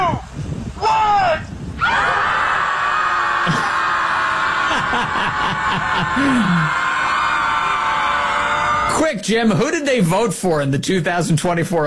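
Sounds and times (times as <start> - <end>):
group of people yelling and whooping outdoors: 0.8 - 9.1
snickering laughs: 3.4 - 8.0
speech: 5.7 - 6.8, 9.1 - 11.8.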